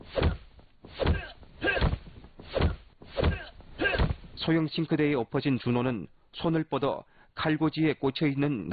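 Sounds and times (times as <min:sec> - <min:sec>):
heavy punch impacts of a fistfight: 0:00.1 - 0:04.3
speech: 0:04.4 - 0:08.7.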